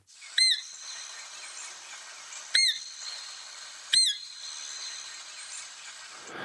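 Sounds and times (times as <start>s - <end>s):
slightly hissy background: 0.0s - 6.4s
roe deer fawn call blown on whistle: 0.1s - 5.7s.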